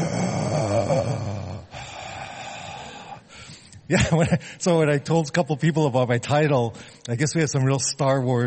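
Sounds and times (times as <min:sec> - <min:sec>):
voice imitating heavy mechanical respirator breathing: 0:00.0 - 0:03.6
speech: 0:03.9 - 0:08.4.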